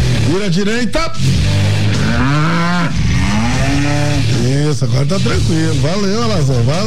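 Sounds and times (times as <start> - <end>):
speech: 0.3 - 2.5, 3.8 - 6.8
cow mooing: 1.8 - 4.4.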